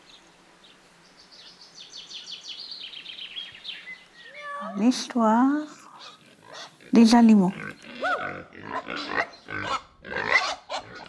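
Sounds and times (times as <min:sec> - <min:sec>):
speech: 0:04.6 - 0:05.8, 0:06.9 - 0:07.7
pig grunting and oinking: 0:05.7 - 0:11.0.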